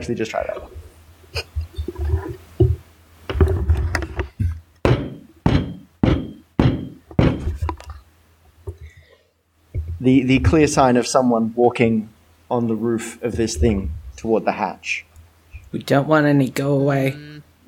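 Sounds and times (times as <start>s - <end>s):
speech: 0.0s - 1.5s, 10.0s - 15.1s, 15.7s - 17.4s
thumps on a table above the microphone: 2.6s - 7.8s.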